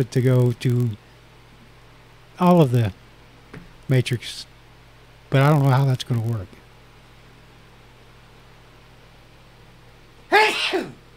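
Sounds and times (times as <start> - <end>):
speech: 0.0 - 1.0, 2.4 - 3.0, 3.9 - 4.5, 5.3 - 6.6
quiet hum: 0.0 - 11.1
person sneezing: 10.3 - 11.0.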